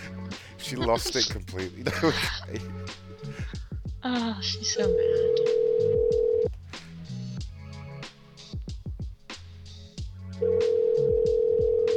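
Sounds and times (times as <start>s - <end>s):
laughter: 0.0s - 3.5s
speech: 0.7s - 5.9s
steady phone dial tone: 4.9s - 6.5s, 10.4s - 11.9s.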